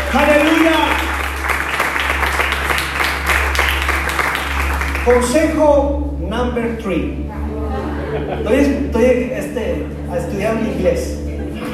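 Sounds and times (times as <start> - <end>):
audience applause: 0.0 - 5.4
low steady hum: 0.0 - 11.7
speech: 5.0 - 7.5, 8.1 - 11.2
laughter: 7.3 - 11.7.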